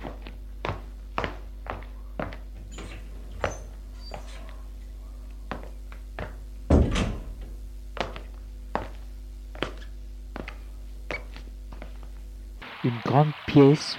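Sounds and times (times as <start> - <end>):
footsteps on a hard floor: 0.0 - 4.6, 5.5 - 6.4, 7.3 - 12.3
door at the end of a corridor pulled open: 6.7 - 7.6
speech: 12.9 - 13.9.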